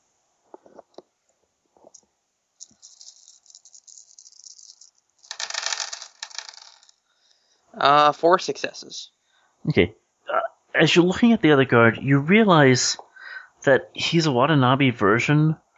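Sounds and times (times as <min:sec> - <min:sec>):
handful of dice clattering: 0:02.6 - 0:06.9
speech: 0:07.8 - 0:10.0, 0:10.8 - 0:13.0, 0:13.6 - 0:15.6.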